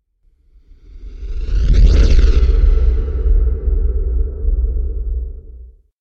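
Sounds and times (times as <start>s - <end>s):
meteorite asteroid sounds: 1.0s - 5.6s.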